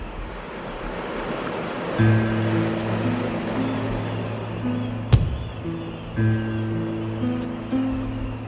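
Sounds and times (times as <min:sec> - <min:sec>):
breeze at a cove: 0:00.0 - 0:08.4
sea surf at a cove: 0:00.0 - 0:08.4
low sustained tonal notes: 0:01.9 - 0:08.4
sharp knock: 0:05.1 - 0:05.8.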